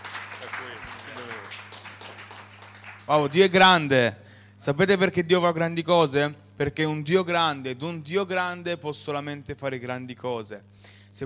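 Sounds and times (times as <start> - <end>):
crowd applauding: 0.0 - 3.6
low electrical hum: 0.0 - 11.2
speech: 3.1 - 11.2.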